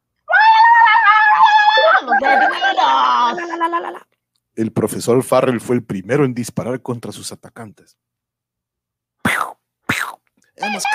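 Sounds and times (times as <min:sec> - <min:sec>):
deafening crowd shouting and screaming with high-pitched wails: 0:00.3 - 0:03.6
laughter: 0:01.8 - 0:04.1
speech: 0:03.4 - 0:08.1, 0:10.6 - 0:10.9.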